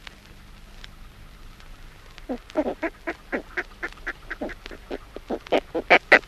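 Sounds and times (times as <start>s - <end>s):
speech: 2.3s - 3.1s
northern fulmar giving short harsh quacking notes: 2.3s - 6.2s.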